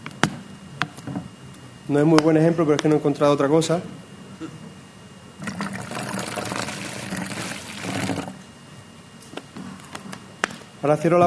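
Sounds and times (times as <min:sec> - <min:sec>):
speech: 0:01.9 - 0:04.6, 0:10.8 - 0:11.2
water poured into coffee in a bottle: 0:05.4 - 0:08.4.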